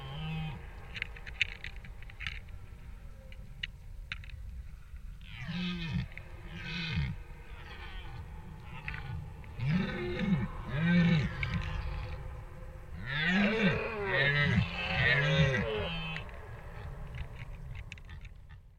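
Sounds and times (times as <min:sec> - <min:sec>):
deer bellowing in deep hoarse roars: 0:00.0 - 0:02.6, 0:05.2 - 0:18.6.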